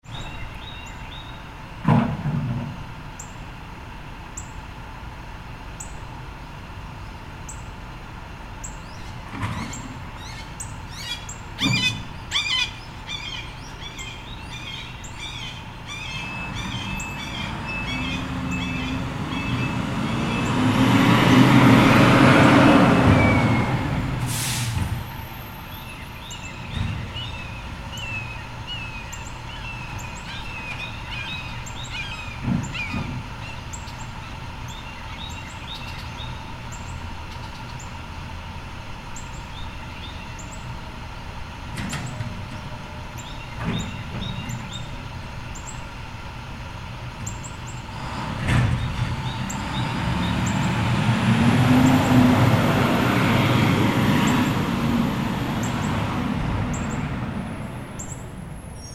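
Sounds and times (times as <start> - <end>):
birds: 0.0 - 1.6, 7.0 - 21.6, 25.6 - 38.1, 39.0 - 40.8, 41.7 - 46.0, 47.1 - 58.9
recycling truck: 0.0 - 58.9.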